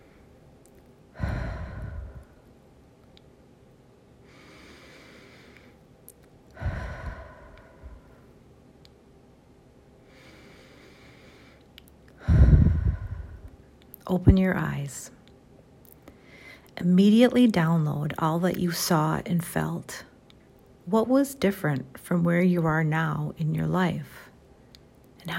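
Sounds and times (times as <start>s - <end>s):
deep breaths taken slowly: 1.1s - 2.5s, 4.2s - 5.8s, 6.5s - 8.4s, 10.0s - 13.6s, 16.1s - 16.7s
speech: 14.1s - 15.2s, 16.8s - 20.1s, 20.9s - 24.2s.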